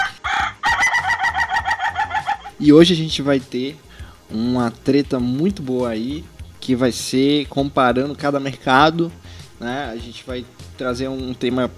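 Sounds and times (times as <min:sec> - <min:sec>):
rooster crowing: 0:00.0 - 0:02.6
speech: 0:02.6 - 0:11.7.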